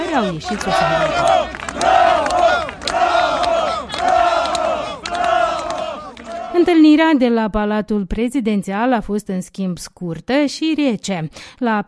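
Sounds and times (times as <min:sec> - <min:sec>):
large street crowd booing: 0:00.0 - 0:06.6
speech: 0:00.2 - 0:02.4, 0:06.6 - 0:11.8.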